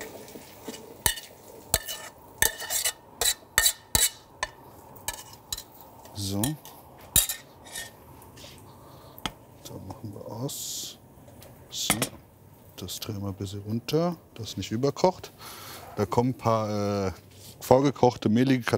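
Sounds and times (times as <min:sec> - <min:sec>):
spoon scraping and clinking against a pot scooping heated peas: 0:00.7 - 0:04.3, 0:05.1 - 0:05.7, 0:07.2 - 0:08.5
speech: 0:06.2 - 0:06.7, 0:10.4 - 0:10.7, 0:12.8 - 0:18.7.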